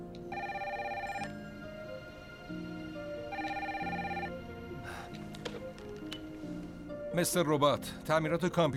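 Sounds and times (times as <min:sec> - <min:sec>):
phone line ringing while a call is transferred to another number: 0:00.3 - 0:01.9, 0:03.2 - 0:04.4
speech: 0:07.2 - 0:08.7.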